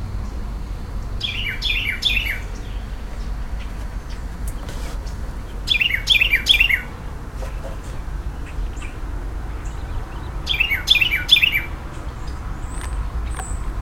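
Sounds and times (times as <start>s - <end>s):
low rumbling background noise: 0.0s - 13.8s
Carolina wren singing loud rolling whistled phrases: 1.0s - 4.3s, 5.0s - 7.0s, 8.2s - 13.8s.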